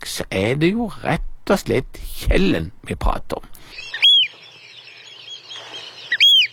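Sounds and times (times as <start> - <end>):
faint noise: 0.0 - 6.5
speech: 0.2 - 3.9
oystercatcher piping whistles: 3.7 - 6.5.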